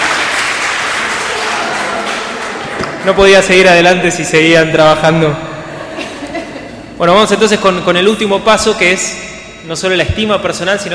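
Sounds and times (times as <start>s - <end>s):
audience applause at a gathering: 0.0s - 3.0s
speech: 3.0s - 5.5s, 7.0s - 10.9s
laughter: 5.6s - 7.0s.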